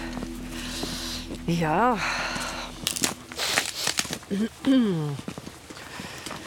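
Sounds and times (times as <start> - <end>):
speech: 1.5 - 2.3, 4.3 - 5.3
footsteps crunching on ice: 2.4 - 4.4.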